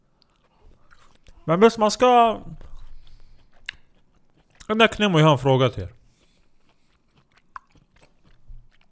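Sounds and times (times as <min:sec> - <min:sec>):
chewing olives with wet mouth clicks: 0:00.1 - 0:01.5, 0:02.6 - 0:04.7, 0:06.0 - 0:08.8
speech: 0:01.5 - 0:02.6, 0:04.7 - 0:06.0.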